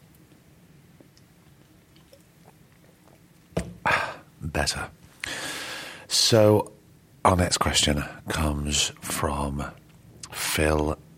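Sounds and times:
person sipping a drink: 0:01.0 - 0:04.0
speech: 0:04.6 - 0:05.0, 0:06.2 - 0:06.7, 0:07.3 - 0:09.8, 0:10.6 - 0:11.0.

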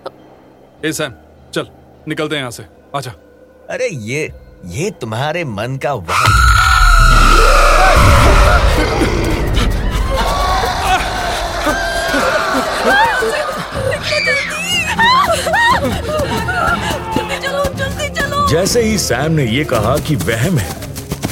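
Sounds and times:
speech: 0:00.8 - 0:06.5, 0:18.5 - 0:20.8
eerie snickering cackling noises: 0:06.1 - 0:17.4
woman screaming: 0:06.1 - 0:17.6
eerie warbling wailing tones: 0:06.2 - 0:14.6
dense rumbling background: 0:06.3 - 0:18.2.

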